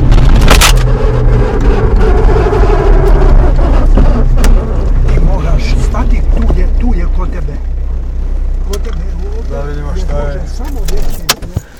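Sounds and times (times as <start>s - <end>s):
loud low rumble inside a car: 0.0s - 11.7s.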